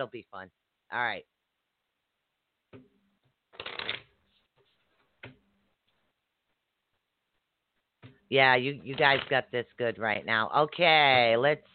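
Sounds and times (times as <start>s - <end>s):
speech: 0.0s - 1.4s, 8.3s - 11.7s
tarot cards shuffling: 3.5s - 5.4s, 8.8s - 9.5s.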